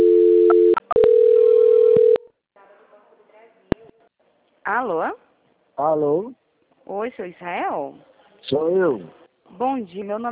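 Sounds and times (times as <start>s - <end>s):
telephone line tone during call transfer: 0.0s - 2.2s
speech: 5.8s - 10.3s.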